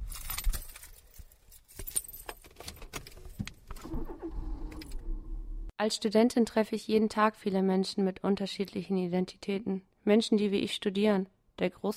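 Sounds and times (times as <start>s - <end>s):
keys jangling and clicking: 0.0s - 3.4s
car engine starting and rumbling: 3.7s - 5.7s
speech: 5.8s - 11.9s.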